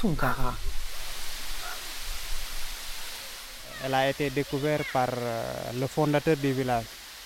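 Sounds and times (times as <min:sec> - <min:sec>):
speech: 0:00.0 - 0:00.7, 0:03.8 - 0:07.0
waterfall roaring in a rocky bay: 0:00.0 - 0:07.2.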